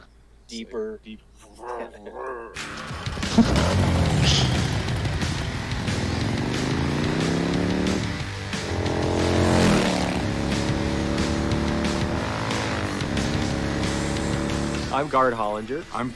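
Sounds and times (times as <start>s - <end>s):
speech: 0.5s - 4.6s, 15.0s - 16.1s
Arch motorcycle engine revving: 2.6s - 15.0s.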